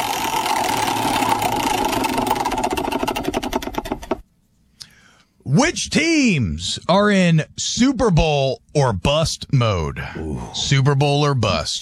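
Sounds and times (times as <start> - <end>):
prize wheel spinning with ticking clicks: 0.0 - 4.2
speech: 5.6 - 11.7.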